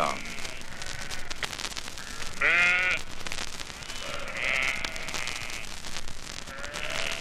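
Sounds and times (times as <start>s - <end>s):
sheep bleating from a grazing flock in Hyde Park London: 0.0s - 1.4s, 2.0s - 3.1s, 3.8s - 5.7s, 6.5s - 7.1s
steady outdoor rustle: 0.0s - 7.1s.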